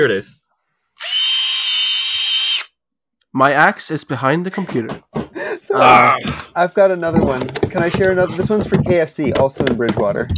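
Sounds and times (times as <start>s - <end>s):
speech: 0.0s - 0.4s, 1.0s - 1.3s, 3.3s - 10.3s
power drill whirring in a workshop: 1.0s - 2.7s.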